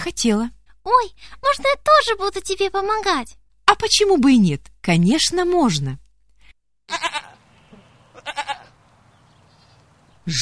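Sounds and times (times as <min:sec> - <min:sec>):
speech: 0:00.0 - 0:06.0
sheep bleating: 0:06.9 - 0:08.8.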